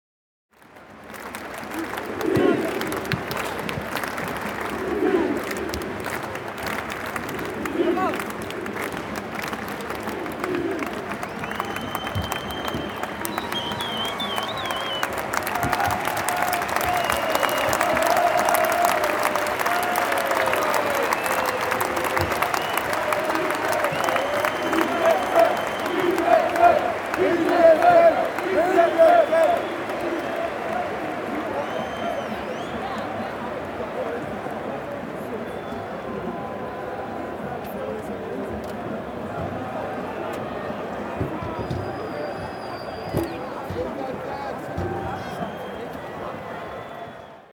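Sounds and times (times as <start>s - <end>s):
stadium crowd ambience: 0.5s - 47.5s.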